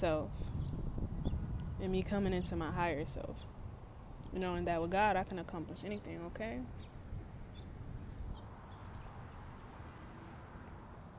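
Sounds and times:
speech: 0:00.0 - 0:00.6, 0:01.8 - 0:03.6, 0:04.3 - 0:06.9
birds chirping outdoors: 0:05.8 - 0:09.1.

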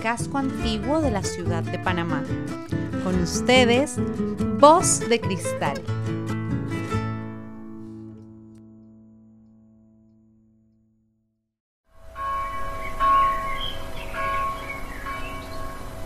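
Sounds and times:
speech: 0:00.0 - 0:06.1
deep church bell strike: 0:12.0 - 0:16.0.

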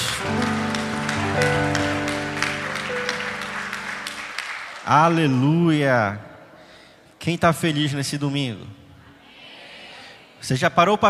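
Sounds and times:
sustained keyboard chords: 0:00.0 - 0:04.7
audience clapping: 0:00.0 - 0:05.6
speech: 0:04.9 - 0:06.3, 0:07.2 - 0:08.8, 0:10.4 - 0:11.0.

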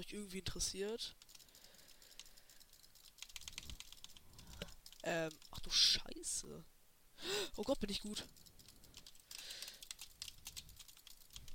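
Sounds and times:
speech: 0:00.0 - 0:01.3, 0:05.0 - 0:08.5
typing on a Trust or GXT gaming keyboard: 0:01.2 - 0:05.7, 0:08.2 - 0:11.5.

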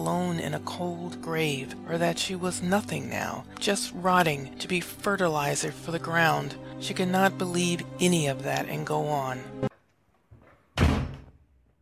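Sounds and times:
speech: 0:00.0 - 0:09.6
door slamming shut upstairs: 0:10.8 - 0:11.4.

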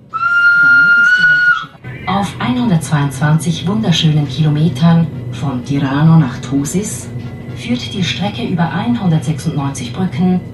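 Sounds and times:
train whistle blast: 0:00.0 - 0:01.8
low rumbling background: 0:00.0 - 0:10.5
speech: 0:02.2 - 0:10.5.

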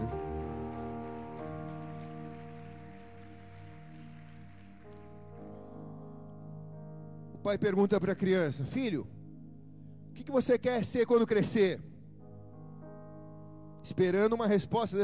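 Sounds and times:
congregation applauding loudly: 0:00.0 - 0:05.6
sustained keyboard chords: 0:00.0 - 0:15.0
speech: 0:07.4 - 0:09.2, 0:10.2 - 0:11.9, 0:13.8 - 0:15.0.

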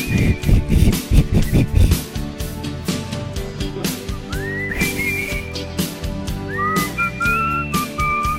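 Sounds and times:
person whistling a sliding wavering melody: 0:00.0 - 0:01.8, 0:03.9 - 0:08.3
loud backing music with a steady beat: 0:00.0 - 0:08.3.

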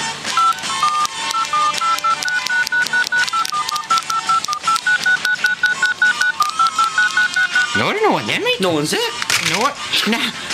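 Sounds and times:
touch-tone beeps of a phone number being dialed: 0:00.4 - 0:07.8
speech: 0:08.1 - 0:10.5.

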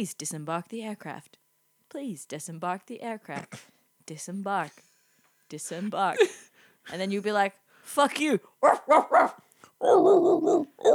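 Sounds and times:
speech: 0:00.0 - 0:04.9, 0:05.5 - 0:10.9
dog barking: 0:08.6 - 0:10.9.

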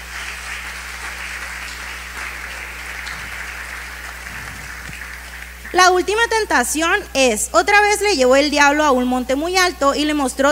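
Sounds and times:
crowd applauding: 0:00.0 - 0:06.2
low hum: 0:00.0 - 0:10.0
speech: 0:05.7 - 0:10.5.

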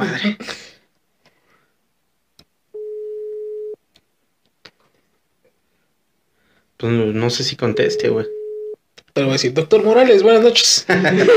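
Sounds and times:
speech: 0:00.0 - 0:00.5, 0:06.8 - 0:08.4, 0:09.2 - 0:11.3
ringback tone of a telephone call being dialed: 0:02.8 - 0:03.8, 0:07.7 - 0:08.8
laughter: 0:10.8 - 0:11.3.

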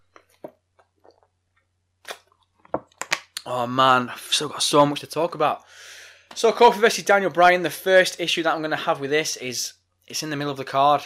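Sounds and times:
person sipping and gulping water: 0:01.0 - 0:01.3
speech: 0:03.4 - 0:11.0.

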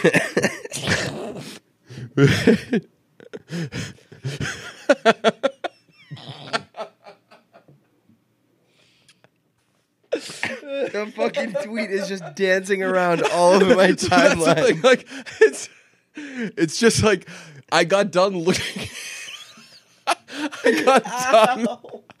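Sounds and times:
speech: 0:00.0 - 0:00.6, 0:02.2 - 0:03.0, 0:11.8 - 0:15.7, 0:16.5 - 0:18.8, 0:20.8 - 0:21.9
laughter: 0:00.0 - 0:00.8, 0:02.2 - 0:07.8, 0:10.3 - 0:15.7, 0:18.4 - 0:22.1
harsh coughing fit: 0:00.0 - 0:04.9, 0:06.1 - 0:06.8, 0:10.1 - 0:12.2, 0:13.1 - 0:15.7.

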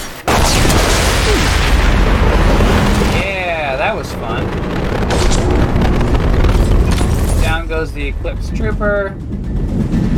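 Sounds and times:
giant mech exploding in a shooter video game: 0:00.3 - 0:10.1
roaring rumble of giant mech explosion in a video game: 0:01.2 - 0:10.1
speech: 0:07.8 - 0:09.9.

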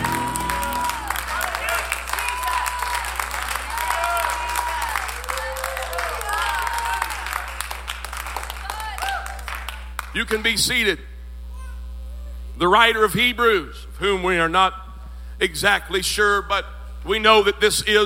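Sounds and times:
church service audience clapping in praise: 0:00.0 - 0:10.4
low steady hum: 0:00.0 - 0:18.0
speech: 0:10.2 - 0:11.1, 0:12.6 - 0:14.8, 0:15.4 - 0:18.0.

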